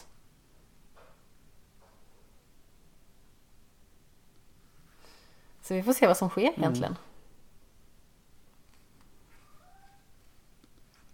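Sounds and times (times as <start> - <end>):
steady background hiss: 0.0 - 11.1
speech: 5.7 - 7.1
cat meow: 9.3 - 10.2.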